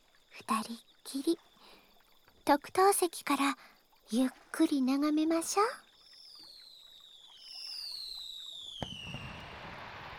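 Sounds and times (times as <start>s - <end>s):
speech: 0.4s - 1.5s, 2.4s - 5.8s
firework whistling as it climbs: 7.5s - 10.1s
firework bursting with a sharp bang: 8.8s - 10.1s
firework sparkling crackle: 8.8s - 10.1s.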